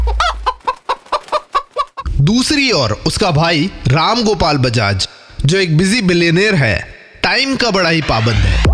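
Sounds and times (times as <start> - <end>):
chickens clucking: 0.0 - 2.2
speech: 2.2 - 8.6.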